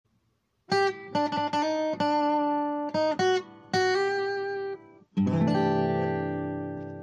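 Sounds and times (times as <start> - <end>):
funny country guitar ringtone: 0.7 - 7.0.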